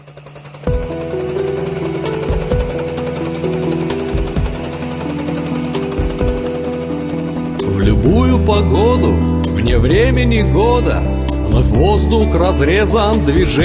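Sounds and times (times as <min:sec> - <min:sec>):
sustained chords: 0:00.0 - 0:13.6
instrumental intro of an arranged song: 0:00.2 - 0:13.6
bass line: 0:07.7 - 0:12.4
speech: 0:08.5 - 0:13.6.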